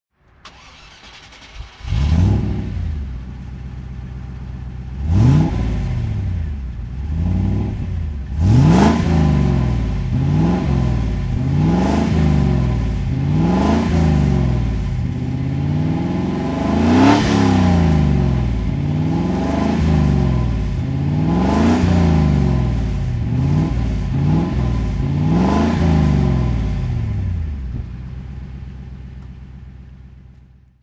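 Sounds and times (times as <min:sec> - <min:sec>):
Range Rover Classic throttle revving: 0:00.4 - 0:29.0.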